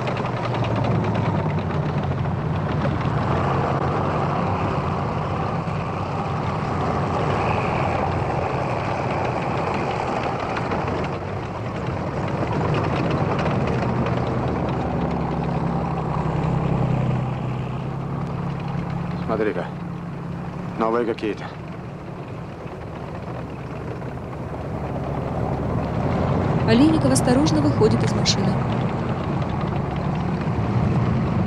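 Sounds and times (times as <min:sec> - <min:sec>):
tanks driving past on a road: 0:00.0 - 0:31.4
speech: 0:21.0 - 0:21.5, 0:26.7 - 0:29.0.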